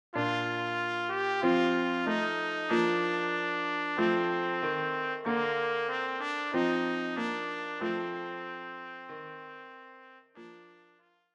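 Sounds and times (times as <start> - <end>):
trumpet playing a Christmas song: 0.2 - 10.8.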